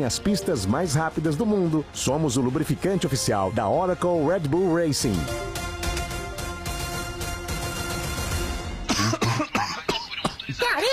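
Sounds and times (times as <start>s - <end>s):
speech: 0.0s - 5.6s
dense music-like sound: 0.0s - 9.4s
person clearing throat: 8.9s - 10.6s
person coughing in short harsh bursts: 8.9s - 10.9s.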